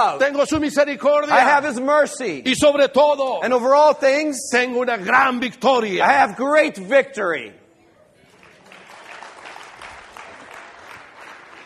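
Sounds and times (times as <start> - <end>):
speech: 0.0 - 7.6
audience applauding during morning worship: 8.3 - 11.6.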